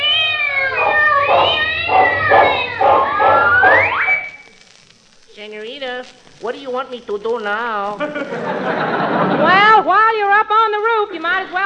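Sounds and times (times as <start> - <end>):
cat meowing in a long wavering yowl: 0.0 - 4.3
speech: 6.0 - 11.6
laughter: 8.0 - 9.9.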